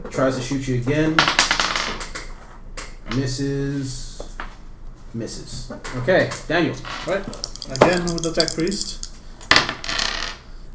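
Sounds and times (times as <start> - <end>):
speech: 0.2 - 1.5, 3.1 - 4.1, 5.1 - 9.0
dice rolling on a hard tabletop during a tabletop role-playing game: 1.2 - 2.4, 6.4 - 10.4.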